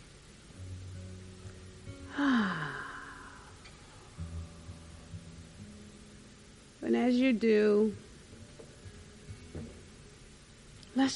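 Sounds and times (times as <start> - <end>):
low steady hum: 0.0 - 11.1
deep cleansing breath exhaled in a sigh: 2.1 - 4.2
speech: 6.9 - 8.0, 11.0 - 11.1.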